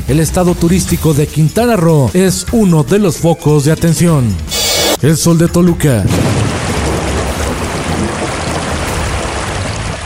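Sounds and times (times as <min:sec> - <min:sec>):
speech: 0:00.1 - 0:06.4
thunder: 0:06.0 - 0:10.0
heavy rain with hail in Tlanepantla, State of Mexico: 0:06.1 - 0:10.0.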